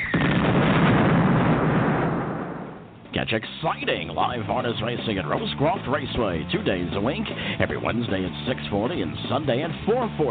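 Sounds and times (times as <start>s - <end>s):
fireworks exploding: 0.0s - 3.1s
speech: 3.1s - 10.2s.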